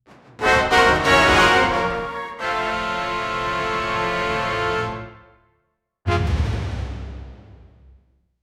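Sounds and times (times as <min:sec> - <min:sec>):
brass: 0:00.4 - 0:07.0.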